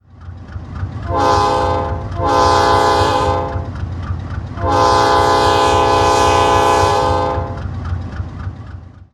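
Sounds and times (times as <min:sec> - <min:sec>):
horn: 0:01.1 - 0:03.7, 0:04.6 - 0:07.6.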